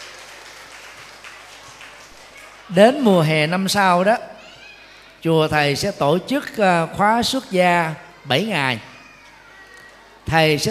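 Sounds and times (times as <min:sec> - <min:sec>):
large crowd applauding at a temple gathering: 0:00.0 - 0:03.3
speech: 0:02.7 - 0:04.3, 0:05.2 - 0:08.9, 0:10.3 - 0:10.6.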